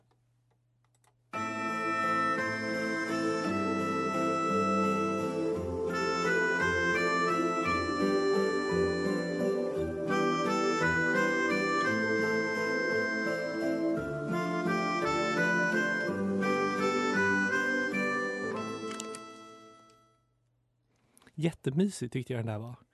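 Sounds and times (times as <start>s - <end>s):
bright instrumental Christmas TV calendar theme jingle with chiming tones: 1.4s - 20.2s
speech: 21.4s - 22.9s.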